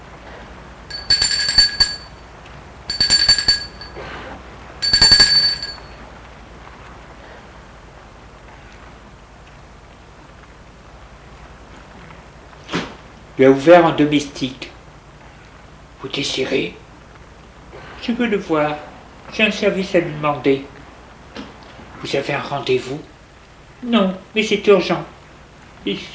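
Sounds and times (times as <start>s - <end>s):
doorbell ringing at a small house at the back of a courtyard: 0.9s - 2.2s, 2.9s - 4.0s, 4.8s - 6.0s
speech: 13.4s - 14.7s, 16.0s - 16.8s, 18.0s - 20.7s, 22.0s - 23.1s, 23.8s - 25.2s, 25.8s - 26.1s.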